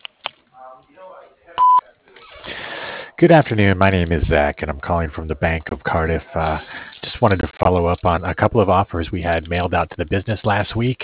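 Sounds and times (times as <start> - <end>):
voicemail answering machine beep: 1.6 - 1.8
speech: 3.2 - 11.0.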